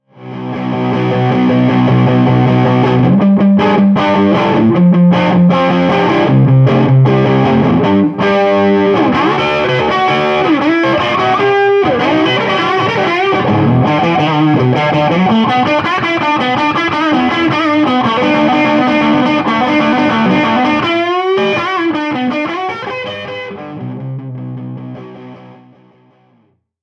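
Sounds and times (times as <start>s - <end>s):
Les Paul guitar with clean high gain fat tone: 0.0s - 26.6s.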